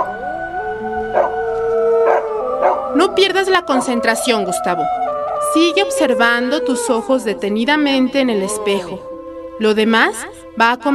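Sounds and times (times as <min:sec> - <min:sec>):
two dogs howling: 0:00.0 - 0:07.3
speech: 0:03.1 - 0:10.9.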